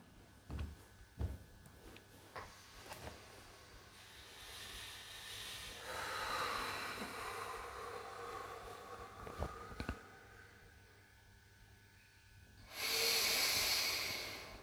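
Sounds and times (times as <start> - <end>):
person doing a slow breathing exercise: 2.5 - 11.0, 12.6 - 14.6
forceful hissing exhale: 3.9 - 10.6, 12.7 - 14.6.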